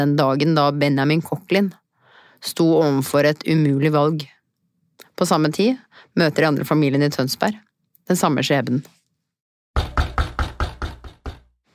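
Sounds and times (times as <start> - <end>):
speech: 0.0 - 1.8, 2.4 - 4.4, 5.2 - 9.0
firm knocks on a door: 9.8 - 11.6.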